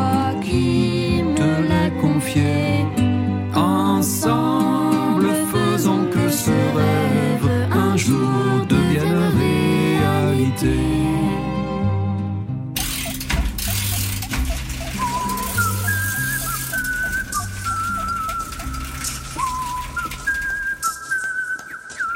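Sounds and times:
music: 0.0s - 22.1s
person whistling a cheerful tune while tinkering: 14.8s - 22.1s.

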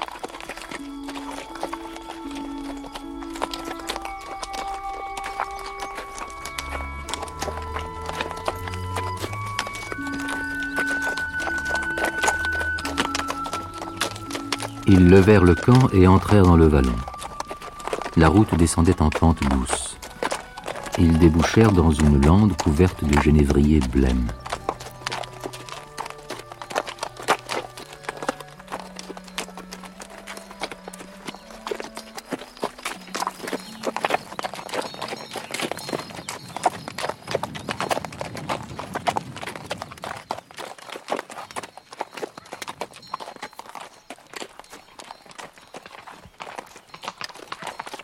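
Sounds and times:
dragoon's horse hooves clip-clopping on a hard road through a juniper heath: 0.0s - 48.0s
speech: 15.0s - 17.1s, 18.2s - 19.8s, 21.0s - 24.4s.

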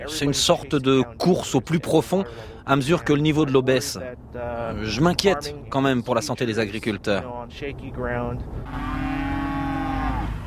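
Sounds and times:
speech: 0.0s - 9.0s
dairy cows mooing: 8.6s - 10.4s.

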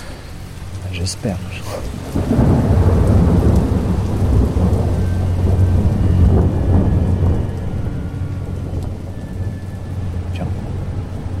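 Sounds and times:
steady rain hiss: 0.0s - 11.3s
thunder rumbling: 0.0s - 11.3s
speech: 0.9s - 2.8s.

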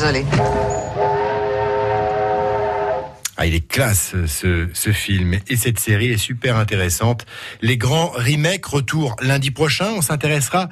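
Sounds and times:
speech: 0.1s - 1.2s, 3.4s - 10.6s
train whistle blast: 0.4s - 3.2s.

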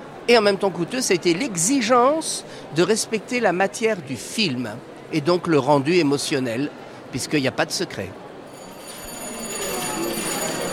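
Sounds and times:
noisy surroundings: 0.0s - 10.7s
speech: 0.3s - 8.2s
theatre-style electric bell ringing to signal a film screening: 8.5s - 10.7s.

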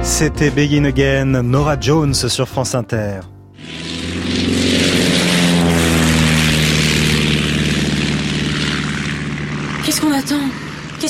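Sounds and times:
speech: 0.1s - 3.8s, 9.8s - 11.0s
propeller airplane engine droning at full power: 3.5s - 11.0s.

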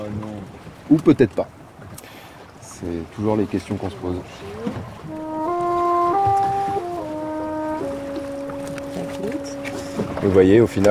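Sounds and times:
rush of wind and water noise: 0.0s - 10.8s
speech: 0.9s - 1.6s, 2.8s - 5.3s, 10.2s - 10.8s
boat engine droning on the water: 4.0s - 10.8s.

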